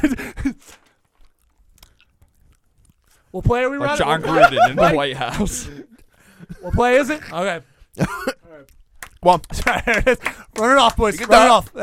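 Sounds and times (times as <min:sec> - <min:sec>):
speech: 0:00.0 - 0:00.8, 0:03.3 - 0:05.9, 0:06.6 - 0:11.8
mouth chewing: 0:00.7 - 0:03.4, 0:08.6 - 0:09.3
laughter: 0:03.9 - 0:06.8, 0:09.6 - 0:10.5.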